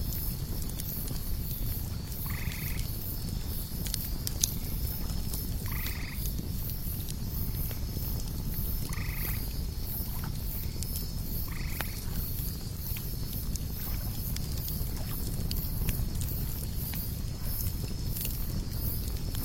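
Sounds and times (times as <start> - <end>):
campfire crackling by a lake at night: 0.0 - 19.4
cicadas buzzing: 0.0 - 19.4
frog-like croak: 2.2 - 2.9, 5.6 - 6.2, 8.8 - 9.5, 11.4 - 12.1.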